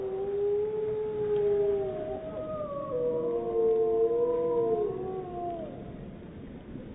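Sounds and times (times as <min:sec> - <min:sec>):
two wolves howling: 0:00.0 - 0:06.0.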